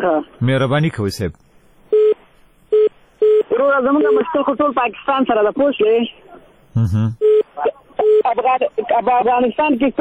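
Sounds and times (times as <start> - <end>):
speech: 0.0 - 1.4, 3.6 - 9.9
telephone line beeps from a caller's connection cutting off: 1.9 - 4.2, 7.2 - 8.3.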